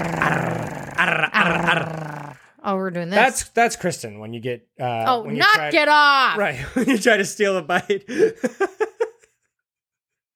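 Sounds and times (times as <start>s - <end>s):
person imitating a dog growling over food: 0.0s - 2.6s
speech: 2.6s - 8.8s.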